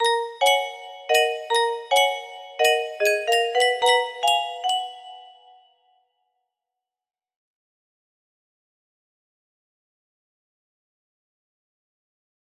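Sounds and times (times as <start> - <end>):
happy jingle music box melody: 0.0 - 5.8.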